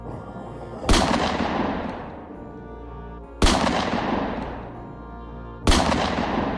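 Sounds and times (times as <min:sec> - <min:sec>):
loud gunshots with long rumbling echo: 0:00.9 - 0:02.4, 0:03.4 - 0:04.8, 0:05.6 - 0:06.5.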